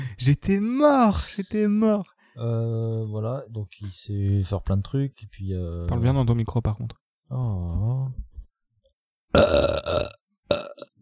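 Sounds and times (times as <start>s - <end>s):
speech: 0.2s - 8.3s, 9.3s - 10.7s
person burping: 9.3s - 10.9s.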